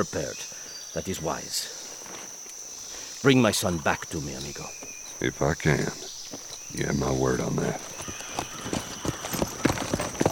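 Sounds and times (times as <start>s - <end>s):
speech: 0.0s - 1.8s, 3.2s - 8.8s
horses' hooves clip-clopping as mounted rural police ride out from a ranch: 6.0s - 10.3s.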